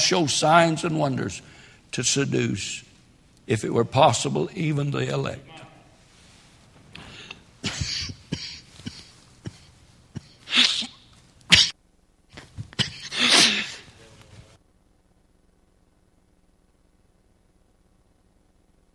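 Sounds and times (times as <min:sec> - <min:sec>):
speech: 0:00.1 - 0:02.9, 0:03.5 - 0:05.7
person coughing: 0:07.1 - 0:11.8, 0:12.4 - 0:14.0.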